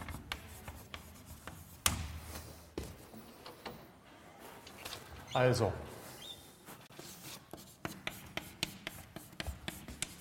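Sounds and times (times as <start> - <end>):
handwriting on a board during a mathematics lecture: 0.0 - 2.1, 6.7 - 10.1
speech: 5.3 - 5.9.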